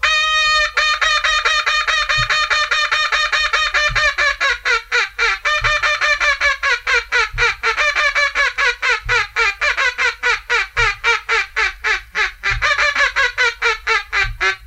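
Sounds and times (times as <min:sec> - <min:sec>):
duck call blowing high ball and come-on quacks: 0:00.0 - 0:14.6.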